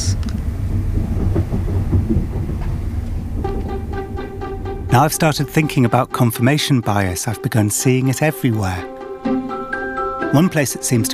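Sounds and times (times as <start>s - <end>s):
train rumbling on rails pulling into London Paddington: 0.0s - 8.7s
speech: 5.0s - 9.0s, 10.3s - 11.1s.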